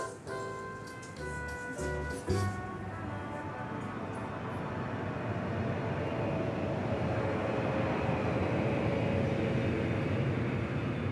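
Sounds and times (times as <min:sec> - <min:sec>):
airplane engine roar: 0:00.0 - 0:11.0.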